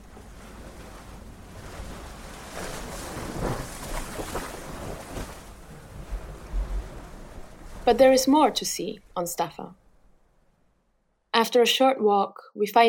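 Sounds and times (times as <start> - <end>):
ocean waves washing against rock columns echoing in a sea cave on Staffa: 0.0 - 11.0
speech: 7.9 - 9.8, 11.4 - 12.8.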